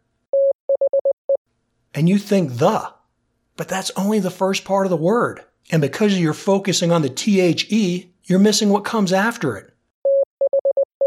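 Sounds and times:
speech: 2.0 - 3.0, 3.6 - 9.7
Morse code beeps on a single steady pitch: 10.0 - 11.0.

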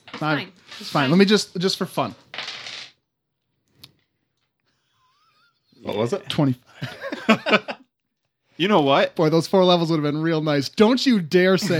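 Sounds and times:
dice rolling on a table: 0.0 - 1.3, 2.2 - 3.0
speech: 0.2 - 2.3, 6.0 - 7.6, 8.6 - 11.7
laughter: 6.7 - 7.9.

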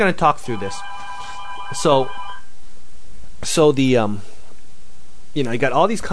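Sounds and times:
speech: 0.0 - 1.0, 1.7 - 2.2, 3.4 - 4.3, 5.3 - 6.1
telephone ringing with a steady electronic tone: 0.4 - 2.5.

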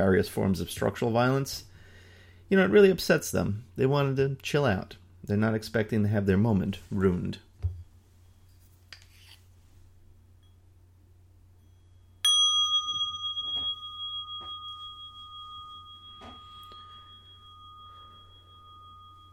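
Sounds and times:
speech: 0.0 - 1.7, 2.5 - 7.5
low steady hum: 0.0 - 19.3
single bell struck for a breathing pause: 11.6 - 19.3.

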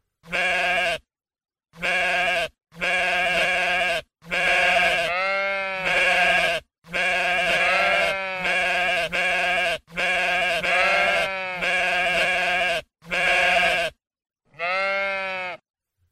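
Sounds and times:
flock of sheep bleating: 0.2 - 1.1, 1.8 - 15.6.

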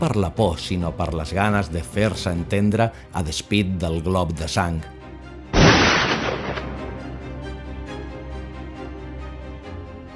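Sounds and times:
speech: 0.0 - 5.0
soldier's rifle shot with rumbling echo: 5.6 - 7.0.

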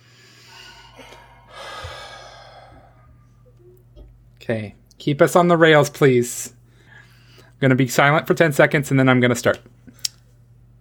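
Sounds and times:
deep breath in through the nose and out through the mouth: 0.0 - 3.4, 6.7 - 7.6
faint low hum: 0.0 - 10.8
speech: 4.5 - 6.6, 7.6 - 9.8.

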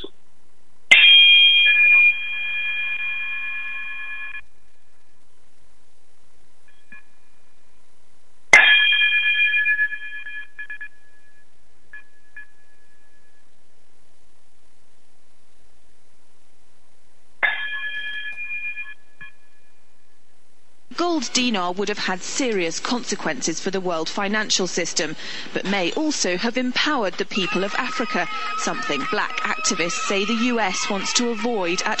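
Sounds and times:
bright metallic closing chime strikes: 0.9 - 3.2, 8.6 - 10.4, 17.4 - 18.8
speech: 21.2 - 31.9
laughter: 25.0 - 31.9.

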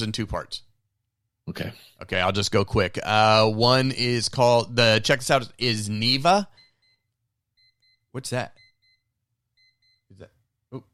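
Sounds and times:
speech: 0.0 - 0.7, 1.5 - 6.6, 8.2 - 8.6, 10.1 - 10.9
electronic timer beeping: 6.5 - 10.1.

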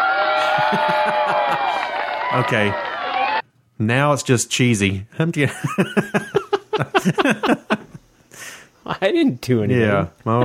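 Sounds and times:
crowd cheering: 0.0 - 3.4
people whooping: 0.0 - 3.4
laughter: 0.2 - 3.3, 5.4 - 8.0, 10.2 - 10.4
speech: 2.3 - 2.9, 3.8 - 7.8, 8.9 - 10.4.

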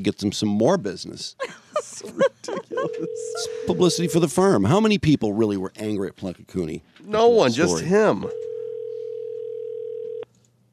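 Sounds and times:
speech: 0.0 - 8.4
laughter: 1.4 - 4.0
faint low hum: 2.0 - 10.7
telephone line ringing tone: 2.9 - 4.3, 7.7 - 10.2.

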